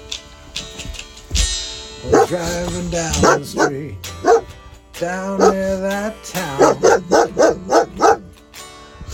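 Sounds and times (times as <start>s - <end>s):
dog barking: 2.0s - 2.4s, 3.1s - 4.5s, 5.4s - 5.7s, 6.5s - 8.4s
speech: 2.0s - 4.3s, 5.0s - 7.5s.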